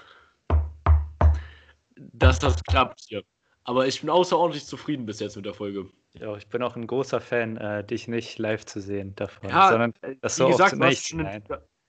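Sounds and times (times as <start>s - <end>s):
knocks on wood: 0.5s - 1.4s
speech: 2.1s - 11.7s.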